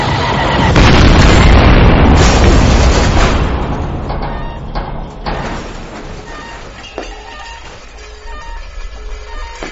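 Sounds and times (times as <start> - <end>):
loud sci-fi weapon blast erupting into a roaring explosion: 0.0 - 6.0.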